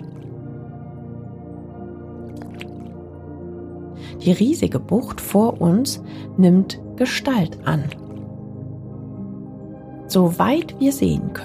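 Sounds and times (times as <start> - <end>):
water splashing: 0.0 - 0.4, 2.2 - 3.0, 7.5 - 8.4
water lapping and dripping from paddle strokes of a gliding boat: 2.3 - 3.0
speech: 4.2 - 8.0, 10.1 - 11.4.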